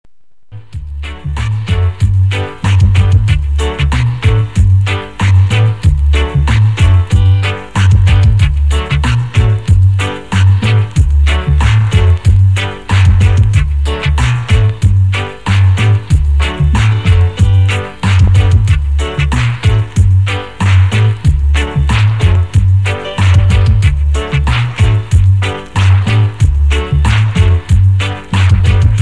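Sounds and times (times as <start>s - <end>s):
reggae instrumental music: 0.6s - 29.0s.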